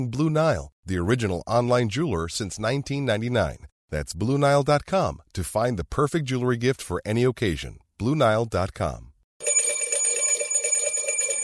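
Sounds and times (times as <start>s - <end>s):
speech: 0.0s - 9.1s
bell ringing with a rapid metallic trill: 9.4s - 11.4s.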